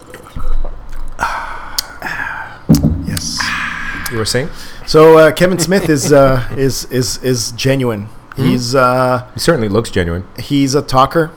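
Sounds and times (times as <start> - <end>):
person drinking water with wet gulps and swallows: 0.3 - 2.2
speech: 4.1 - 11.3
laughter: 5.0 - 6.8.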